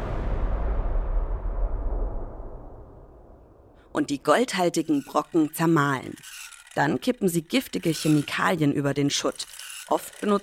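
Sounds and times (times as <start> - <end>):
explosive blast breaking up rock for gold mining: 0.0 - 4.0
speech: 3.9 - 10.4.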